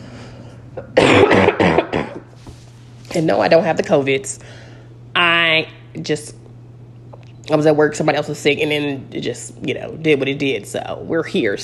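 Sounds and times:
speech: 0:00.8 - 0:01.9, 0:03.1 - 0:04.6, 0:05.2 - 0:06.4, 0:07.5 - 0:11.6
sick man coughing rough chesty coughs: 0:00.8 - 0:02.3.

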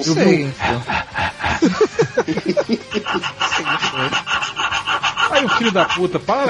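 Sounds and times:
breathy voiced noises: 0:00.0 - 0:06.4
laughter: 0:00.0 - 0:06.4
speech: 0:00.0 - 0:06.4
rasping scrapes: 0:01.3 - 0:06.4.

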